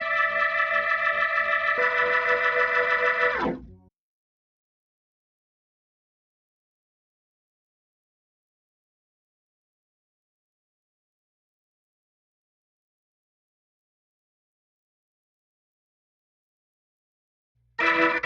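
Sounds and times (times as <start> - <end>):
organ playing through an equalizer: 0.0 - 3.8, 17.8 - 18.2.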